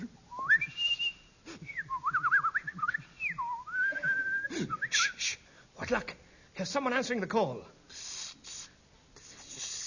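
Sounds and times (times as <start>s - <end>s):
person whistling a short wandering tune: 0.3s - 5.4s
speech: 5.9s - 7.8s.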